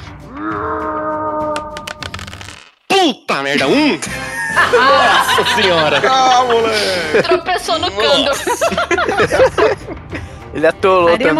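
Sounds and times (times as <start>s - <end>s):
person imitating a scream: 0.3s - 2.2s
speech: 3.5s - 11.3s
laughter: 3.6s - 10.3s.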